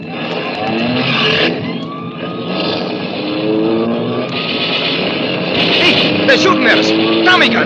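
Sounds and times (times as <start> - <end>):
getaway car engine revving hard while speeding off: 0.0 - 7.6
road noise: 0.0 - 7.6
speech: 6.3 - 7.6.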